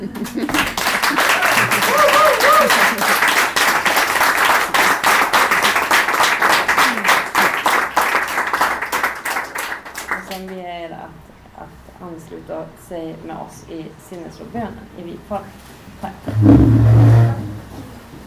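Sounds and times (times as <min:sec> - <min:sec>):
speech: 0:00.0 - 0:00.9, 0:12.3 - 0:17.4
laughter: 0:00.0 - 0:03.2
audience applauding: 0:00.0 - 0:10.4
person whooping: 0:01.2 - 0:03.0, 0:06.8 - 0:07.2.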